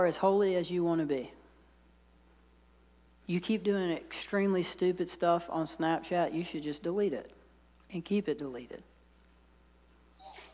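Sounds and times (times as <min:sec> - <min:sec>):
speech: 0:00.0 - 0:01.4, 0:03.3 - 0:08.9
low steady hum: 0:00.0 - 0:10.5
person in an audience sneezing: 0:10.2 - 0:10.5.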